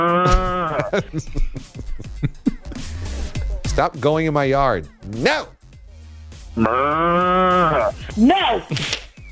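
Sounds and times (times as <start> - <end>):
cow mooing: 0.0 - 0.9, 6.6 - 8.0
speech: 0.0 - 2.5, 3.8 - 5.6, 6.6 - 9.0
laughter: 0.2 - 3.1
knocks and thumps: 0.3 - 0.7.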